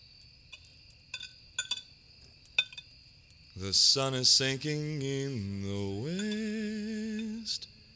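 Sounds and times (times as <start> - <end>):
wooden spoon clinking against a pot as a meager dinner is heated: 1.2 - 1.9, 2.6 - 2.9, 6.2 - 6.6
speech: 3.6 - 7.8.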